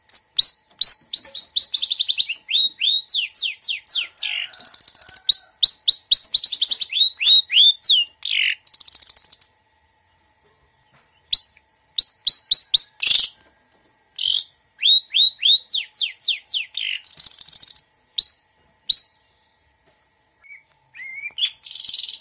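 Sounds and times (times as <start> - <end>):
female long-tailed shrike singing vigorously: 0.0 - 10.2, 11.2 - 13.4, 14.2 - 19.5.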